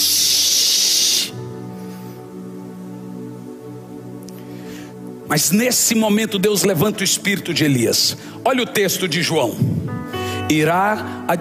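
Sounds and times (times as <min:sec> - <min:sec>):
voice imitating a snake's hiss: 0:00.0 - 0:01.4
speech: 0:05.3 - 0:11.4.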